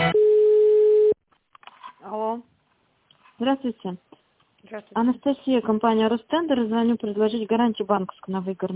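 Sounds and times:
telephone line tone as a call is transferred: 0.1 - 1.2
speech: 3.4 - 8.7.

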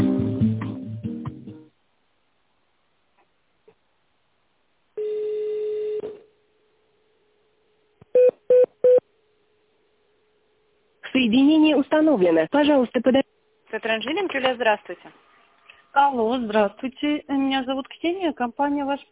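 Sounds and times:
longer steady telephone tone: 5.0 - 6.2, 8.2 - 9.0
speech: 11.2 - 15.2, 15.9 - 19.1.

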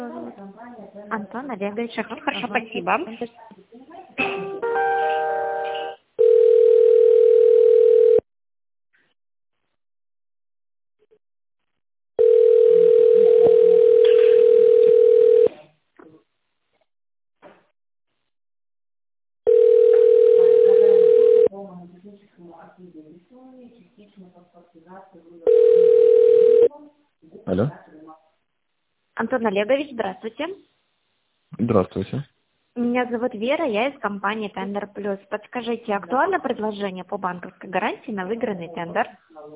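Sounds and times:
speech: 1.1 - 3.6, 29.4 - 30.7, 31.6 - 32.3, 33.0 - 39.5
telephone ringback tone while a call is transferred: 4.6 - 8.2, 12.2 - 15.5, 19.5 - 21.5, 25.5 - 26.7.

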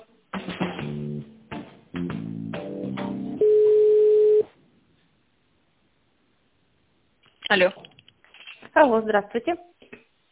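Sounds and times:
telephone line tones while a call is being transferred: 3.4 - 4.5
speech: 7.5 - 7.8, 8.8 - 9.7.

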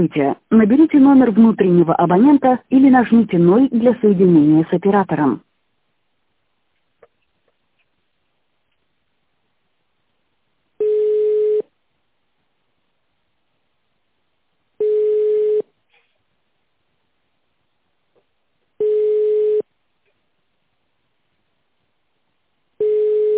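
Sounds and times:
speech: 0.0 - 5.5
telephone ringback tone beeps while a caller is on hold: 10.8 - 11.6, 14.8 - 15.6, 18.8 - 19.6, 22.8 - 23.3.

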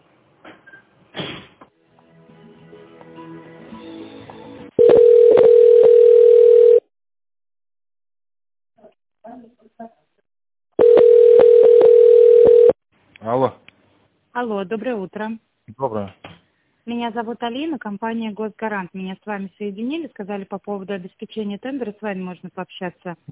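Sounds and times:
telephone ringback tone while a call is transferred: 4.8 - 6.8, 10.8 - 12.8
speech: 14.4 - 16.3, 16.9 - 23.3.

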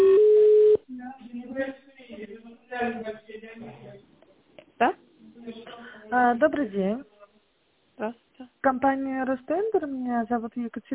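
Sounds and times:
telephone line tone while a call connects: 0.0 - 0.8
speech: 6.1 - 7.1, 8.0 - 10.9.

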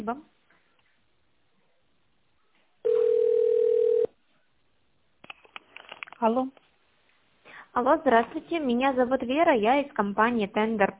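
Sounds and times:
speech: 0.0 - 0.4, 6.2 - 6.6, 7.7 - 10.9
telephone ringback tone while a business call connects: 2.8 - 4.1.

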